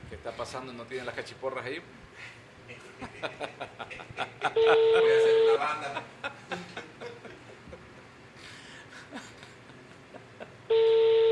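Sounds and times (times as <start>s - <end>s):
speech: 0.2s - 7.1s
laughter: 2.7s - 8.2s, 8.8s - 10.7s
telephone ringback tone: 4.6s - 5.7s, 10.7s - 11.2s.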